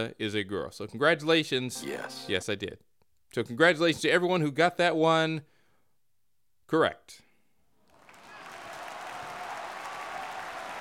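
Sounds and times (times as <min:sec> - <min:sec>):
speech: 0:00.0 - 0:05.5, 0:06.7 - 0:07.2
crowd applauding: 0:07.9 - 0:10.7.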